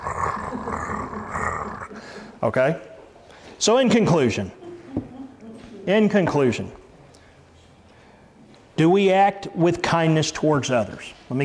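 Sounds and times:
person imitating a cat purr: 0:00.0 - 0:02.0
speech: 0:02.4 - 0:02.9, 0:03.6 - 0:05.1, 0:05.9 - 0:06.8, 0:08.8 - 0:11.4.

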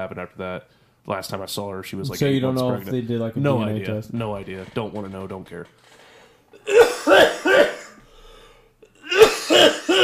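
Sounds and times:
speech: 0:00.0 - 0:07.7
quiet breathing: 0:00.6 - 0:01.1, 0:05.8 - 0:06.6, 0:08.0 - 0:08.9
hard harsh coughing: 0:06.6 - 0:08.1, 0:09.0 - 0:10.0.

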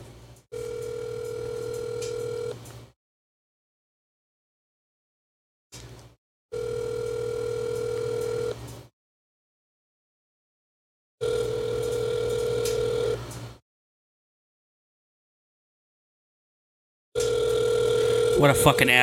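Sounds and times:
phone ringback tone of an unanswered call: 0:00.5 - 0:02.6, 0:06.5 - 0:08.6, 0:11.2 - 0:13.2, 0:17.2 - 0:19.0
speech: 0:18.4 - 0:19.0.

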